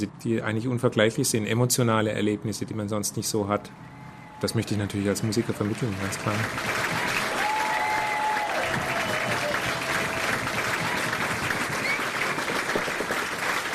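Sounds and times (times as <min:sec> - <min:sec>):
speech: 0:00.0 - 0:07.0
whistles from large audience: 0:03.8 - 0:04.6, 0:07.0 - 0:10.7, 0:11.7 - 0:12.2
large audience cheering: 0:03.8 - 0:13.7
large audience clapping for performing artists: 0:04.5 - 0:13.7.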